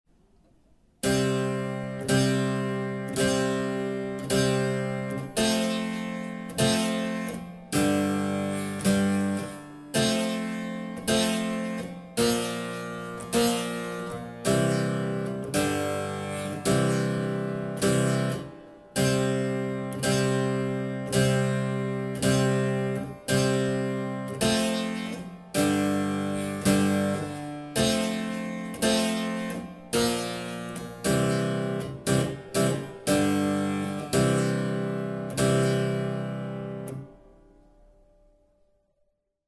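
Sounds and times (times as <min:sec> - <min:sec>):
harpsichord chords of a pavane with arpicordo stop: 0:01.1 - 0:37.1.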